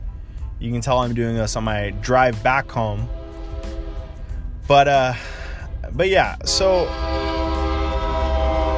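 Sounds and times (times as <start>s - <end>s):
low rumbling of the passing train: 0.0s - 8.7s
speech: 0.6s - 3.2s, 4.7s - 7.2s
train horn blaring: 1.8s - 5.2s, 6.2s - 8.7s.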